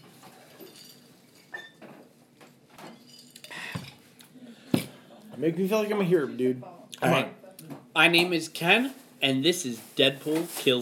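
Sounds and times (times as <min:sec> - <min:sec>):
glasses of rum and Coke clinking in a toast: 0:00.5 - 0:01.8, 0:02.9 - 0:04.0
speech: 0:05.4 - 0:07.4, 0:08.0 - 0:10.7.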